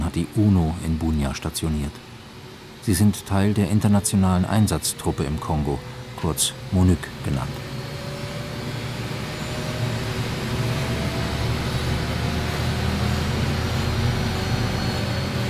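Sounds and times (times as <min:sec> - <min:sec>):
Russian helicopter engine drone in flight: 0:00.0 - 0:15.4
speech: 0:00.2 - 0:02.1, 0:02.8 - 0:07.7.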